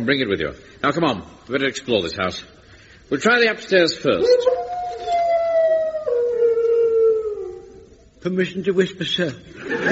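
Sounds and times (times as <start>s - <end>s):
speech: 0.0s - 5.1s, 8.2s - 9.8s
hound howling: 4.2s - 8.0s
laughter: 9.6s - 9.8s.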